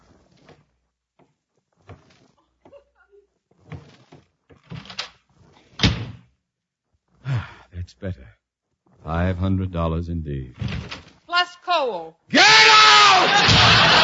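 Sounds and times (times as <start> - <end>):
heavy thumps and loud door slam: 5.8 - 6.2, 10.6 - 11.1, 13.3 - 14.0
speech: 7.9 - 8.4, 9.0 - 10.8, 11.7 - 14.0.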